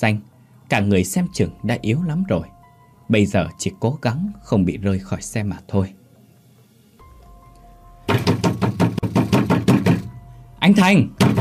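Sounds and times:
speech: 0.0 - 6.0, 10.6 - 11.3
rapid loud pounding on a door: 8.1 - 10.1, 11.2 - 11.3.

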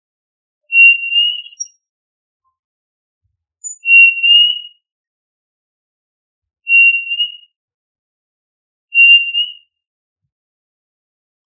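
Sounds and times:
quail whistle: 0.7 - 1.8, 3.6 - 4.8, 6.7 - 7.6, 8.9 - 9.8.

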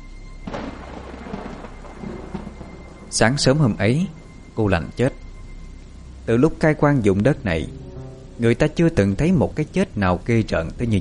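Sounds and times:
heavy night rain: 0.5 - 10.0
gusting wind in heavy night rain: 0.5 - 10.9
speech: 3.1 - 5.2, 6.3 - 7.8, 8.4 - 10.9.

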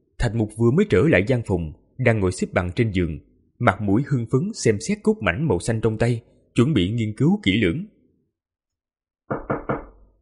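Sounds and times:
speech: 0.2 - 7.9
knocking on the door of a stone chamber inside a palace: 9.3 - 10.2.

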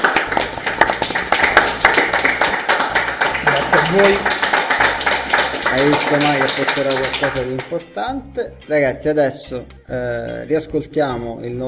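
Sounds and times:
audience applause at an evening dinner gathering: 0.0 - 7.7
speech: 3.9 - 4.4, 5.8 - 11.6.

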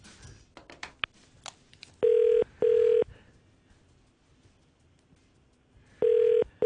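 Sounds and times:
telephone ringback tone as a call is placed from a Hong Kong radio studio: 2.0 - 3.1, 6.0 - 6.6.

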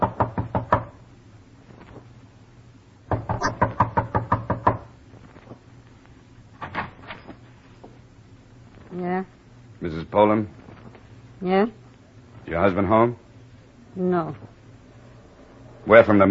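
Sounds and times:
knuckles rapping on a door: 0.0 - 1.0, 3.1 - 4.9
speech: 9.8 - 10.6, 11.4 - 11.8, 12.6 - 13.2, 14.0 - 14.6, 15.9 - 16.2.

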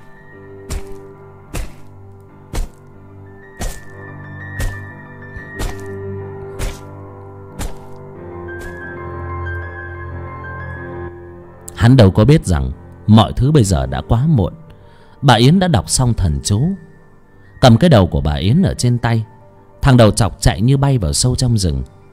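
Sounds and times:
machete chopping into neck bone: 0.7 - 2.9, 3.6 - 4.0, 4.6 - 8.0, 8.6 - 8.9
speech: 11.8 - 14.6, 15.2 - 16.9, 17.6 - 22.0.

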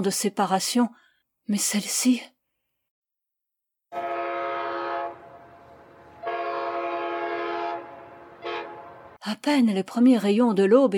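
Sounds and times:
speech: 0.0 - 2.3, 9.3 - 10.9
train whistle blasts as a train arrives at dawn: 4.0 - 9.2.

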